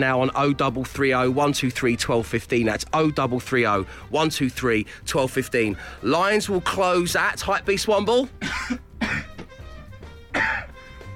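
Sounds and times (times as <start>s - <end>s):
speech: 0.0s - 8.8s
person coughing harshly with throat clearing: 8.4s - 9.5s, 10.3s - 10.9s.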